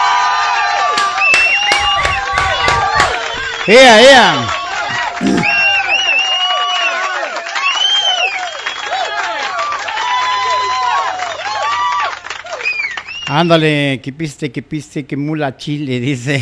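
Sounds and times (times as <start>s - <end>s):
lively group cheering and calling out: 0.0s - 13.4s
scattered hand claps: 0.9s - 13.1s
busy noisy background: 1.0s - 5.6s
speech: 3.7s - 4.6s, 5.2s - 5.5s, 13.3s - 16.4s.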